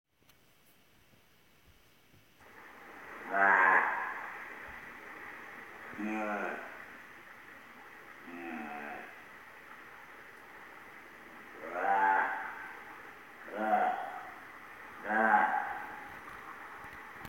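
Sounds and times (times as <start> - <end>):
Hawaiian monk seal vocalizing: 2.7 - 7.2, 7.9 - 9.9, 11.4 - 16.3.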